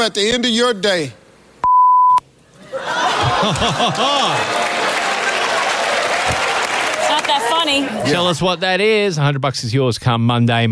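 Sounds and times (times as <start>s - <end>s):
speech: 0.0s - 1.2s, 3.4s - 4.6s, 7.3s - 10.7s
censor bleep over a spoken word: 1.6s - 2.2s
lively crowd noise: 2.4s - 8.7s
burst of laughter: 2.7s - 4.6s.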